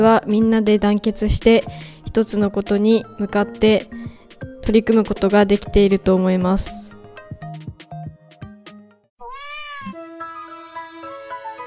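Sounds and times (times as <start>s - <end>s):
speech: 0.0s - 4.0s, 4.6s - 6.9s
cat meowing at a high school in Japan: 9.2s - 11.6s.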